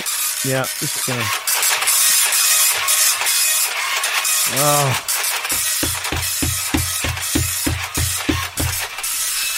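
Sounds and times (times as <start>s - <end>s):
old-fashioned dot matrix printer printing: 0.1s - 9.5s
speech: 0.4s - 1.7s, 4.5s - 6.0s
dot matrix printer print head clunks: 5.5s - 8.9s.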